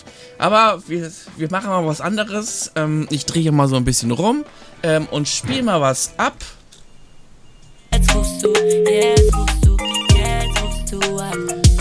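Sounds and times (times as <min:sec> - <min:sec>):
speech: 0:00.4 - 0:06.6, 0:08.4 - 0:09.6
electronic phone ringtone with synthetic melodic jingle: 0:07.0 - 0:10.6.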